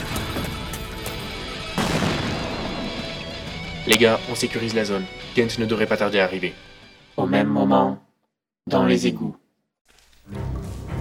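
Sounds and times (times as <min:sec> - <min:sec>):
grenade explosion in a battle: 0:00.0 - 0:04.1
speech: 0:03.9 - 0:08.0, 0:08.7 - 0:09.4.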